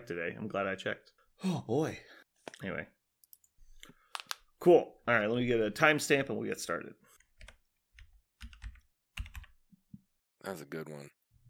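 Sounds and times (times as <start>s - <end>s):
speech: 0.0s - 3.0s, 4.6s - 7.0s, 10.4s - 11.4s
typing notes on a computer keyboard: 7.4s - 9.6s.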